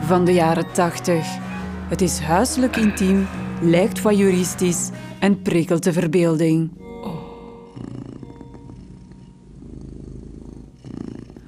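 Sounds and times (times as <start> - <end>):
speech: 0.1 - 6.8
cat purring: 6.0 - 11.4.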